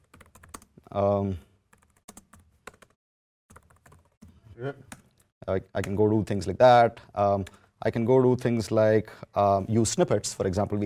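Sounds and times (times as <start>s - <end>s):
typing on a computer keyboard: 0.0s - 0.7s, 1.8s - 4.3s
speech: 1.0s - 1.5s, 4.6s - 10.8s.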